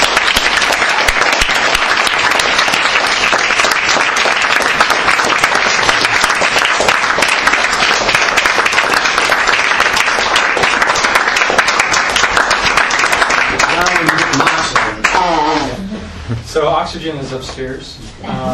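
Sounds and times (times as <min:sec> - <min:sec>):
loud applause from a large audience: 0:00.0 - 0:15.5
speech: 0:16.8 - 0:18.5.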